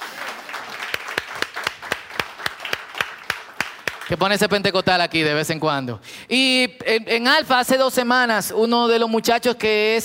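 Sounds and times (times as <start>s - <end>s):
crowd applauding: 0.0s - 4.7s
speech: 4.1s - 10.0s.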